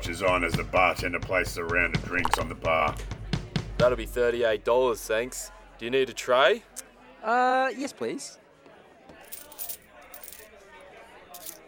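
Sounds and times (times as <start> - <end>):
speech: 0.1 - 3.2, 3.8 - 8.4
faint murmur of a crowd: 4.8 - 11.6
coins of change clattering onto a hard bar surface: 9.2 - 10.5, 11.3 - 11.6.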